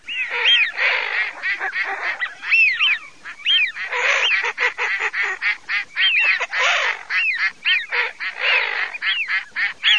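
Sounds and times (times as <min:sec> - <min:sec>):
wigeon calling: 0:00.0 - 0:09.9.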